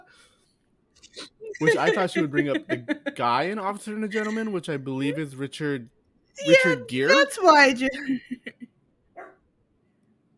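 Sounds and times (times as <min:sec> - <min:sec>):
laughter: 0:01.6 - 0:05.2
speech: 0:01.6 - 0:08.6
dog barking, possibly a pug: 0:09.2 - 0:09.4.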